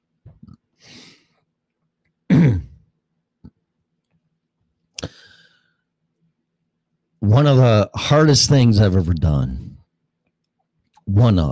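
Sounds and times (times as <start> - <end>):
person coughing after choking on drink: 2.3 - 2.8
throat clearing after choking on drink: 2.3 - 2.8
speech: 7.3 - 9.7, 11.1 - 11.5.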